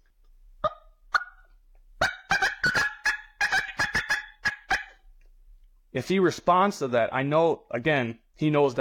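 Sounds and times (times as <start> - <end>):
caller imitating an excited hen turkey cutting: 0.6 - 5.0
speech: 6.0 - 8.7.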